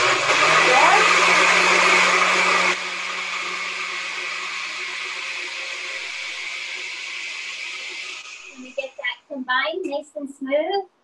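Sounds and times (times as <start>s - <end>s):
blender blending an avocado smoothie: 0.0s - 9.2s.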